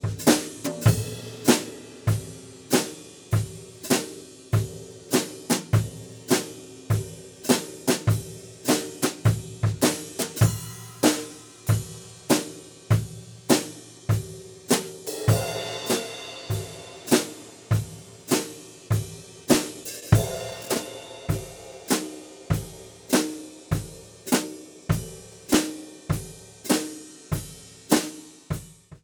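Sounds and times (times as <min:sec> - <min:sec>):
drum overheads: 0:00.0 - 0:29.0.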